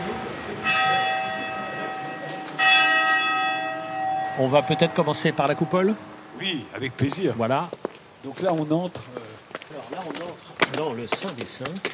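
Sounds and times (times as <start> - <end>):
church bell striking the hour: 0.0 - 7.1
faint ambient noise: 0.0 - 11.9
speech: 4.4 - 9.3, 9.9 - 11.9.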